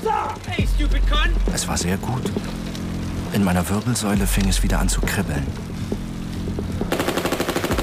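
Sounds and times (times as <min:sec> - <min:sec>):
low rumbling hum: 0:00.4 - 0:07.8
speech: 0:00.8 - 0:06.0
submachine gun fire from two men: 0:06.9 - 0:07.8.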